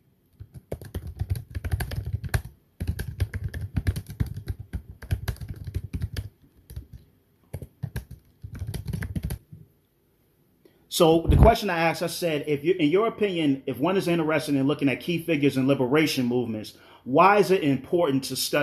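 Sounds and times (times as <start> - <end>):
typing on a computer keyboard: 0.3 - 9.6
speech: 11.0 - 18.6.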